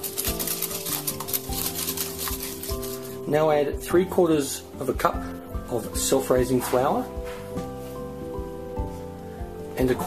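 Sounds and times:
whisk beating two eggs with fine sugar in a bowl: 0:00.0 - 0:03.1
speech: 0:03.3 - 0:07.7, 0:09.8 - 0:10.0.

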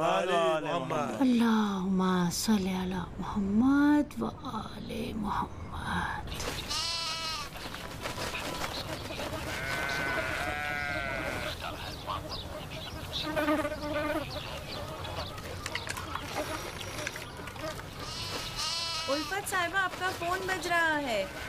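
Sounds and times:
speech: 0:00.0 - 0:06.7, 0:13.2 - 0:14.5, 0:19.1 - 0:21.4
farmyard noise: 0:06.3 - 0:21.4
sheep bleating in a sheep pen: 0:06.6 - 0:07.5, 0:09.3 - 0:11.6, 0:18.0 - 0:19.6, 0:21.0 - 0:21.4.

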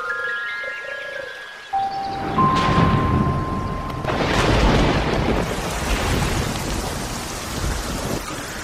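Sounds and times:
brief sustained tones: 0:01.8 - 0:04.8
heavy rain pouring in a thunderstorm: 0:01.9 - 0:08.6
deep thunder rumbling: 0:02.2 - 0:08.6.

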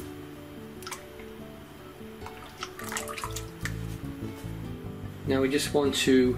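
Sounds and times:
soft wet drips of cream: 0:00.8 - 0:01.4, 0:02.2 - 0:03.9
cream glugging and splashing into a mixing bowl: 0:02.3 - 0:03.8
speech: 0:05.3 - 0:06.3.

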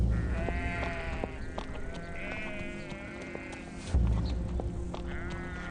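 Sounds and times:
sheep bleating: 0:00.1 - 0:03.9, 0:05.0 - 0:05.6.

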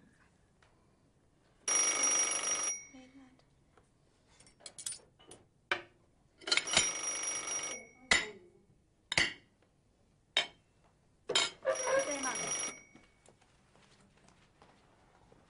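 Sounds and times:
telephone ringing on an outgoing call: 0:01.7 - 0:03.0, 0:06.6 - 0:08.0, 0:11.6 - 0:13.3.

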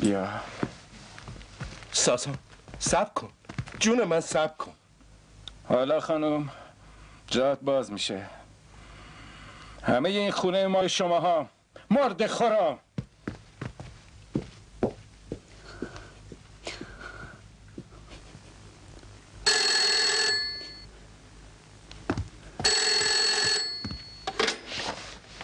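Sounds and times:
speech: 0:00.0 - 0:00.6, 0:01.9 - 0:04.8, 0:05.7 - 0:06.6, 0:07.3 - 0:08.4, 0:09.8 - 0:12.8
footsteps: 0:00.4 - 0:04.4, 0:13.0 - 0:18.5, 0:22.0 - 0:25.4
telephone ringing with a bright electronic trill: 0:19.4 - 0:20.9, 0:22.6 - 0:24.6.

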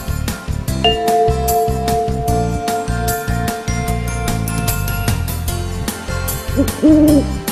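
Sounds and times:
rhythmic clicking: 0:00.9 - 0:06.3
owl hooting: 0:06.6 - 0:07.3.

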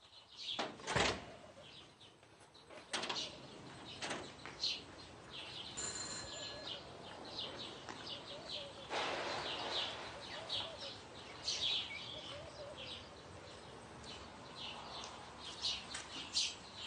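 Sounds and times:
birds chirping faintly: 0:00.0 - 0:16.8
door being opened: 0:00.6 - 0:01.3, 0:02.7 - 0:04.4.

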